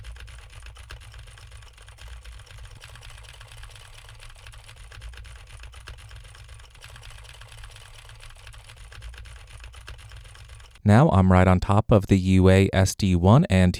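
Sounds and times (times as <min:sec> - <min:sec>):
typing on a mechanical computer keyboard: 0:00.0 - 0:10.8
speech: 0:10.9 - 0:13.7.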